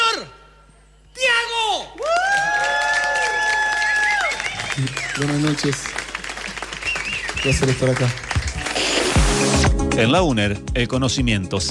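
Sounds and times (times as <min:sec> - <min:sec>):
audience applause at a university event: 0:02.0 - 0:09.6
speech: 0:04.8 - 0:06.0, 0:07.4 - 0:08.3, 0:09.5 - 0:11.6.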